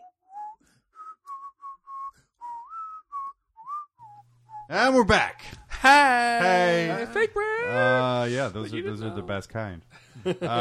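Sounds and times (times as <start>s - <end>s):
man whistling a bright melodic tune: 0.0s - 4.7s
speech: 4.7s - 10.5s
laughter: 10.0s - 10.5s.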